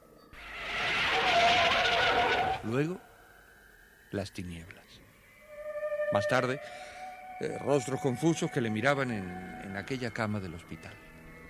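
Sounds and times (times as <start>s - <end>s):
car brakes screeching as tires skid: 0.4s - 2.7s
speech: 2.6s - 3.1s, 4.1s - 5.0s, 6.1s - 11.1s.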